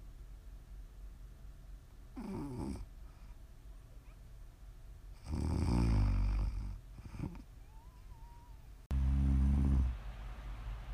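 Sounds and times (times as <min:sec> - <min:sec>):
person snoring: 0:05.2 - 0:07.4, 0:08.9 - 0:10.0.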